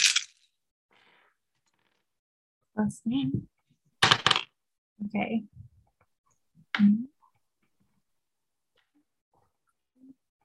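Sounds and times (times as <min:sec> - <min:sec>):
several dice rolled during a tabletop game: 0:00.0 - 0:00.5
speech: 0:02.8 - 0:03.5, 0:05.0 - 0:05.7, 0:06.8 - 0:07.1.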